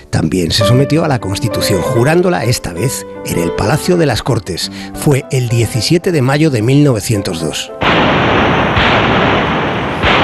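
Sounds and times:
speech: 0:00.1 - 0:08.1
cannon salute shots: 0:07.8 - 0:10.2.

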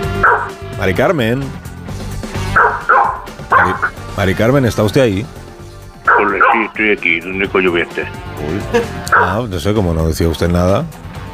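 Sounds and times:
female dog barking: 0:00.1 - 0:00.6, 0:02.5 - 0:03.9, 0:06.1 - 0:06.6, 0:09.1 - 0:09.4
speech: 0:00.8 - 0:01.6, 0:03.7 - 0:05.4, 0:06.3 - 0:11.1.

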